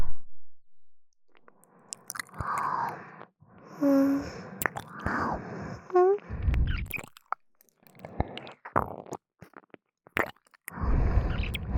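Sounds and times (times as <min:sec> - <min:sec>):
ASMR wet mouth licking, smacking and squishy clicks: 0:01.9 - 0:03.0, 0:04.6 - 0:05.2, 0:06.5 - 0:11.7.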